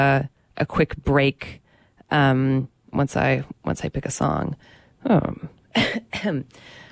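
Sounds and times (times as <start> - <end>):
speech: 0.0 - 6.8
person coughing: 5.8 - 6.4.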